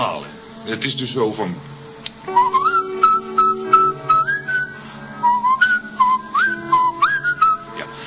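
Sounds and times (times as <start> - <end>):
speech: 0.6 - 1.7, 2.3 - 2.6
person whistling an organ concerto melody: 2.3 - 7.8.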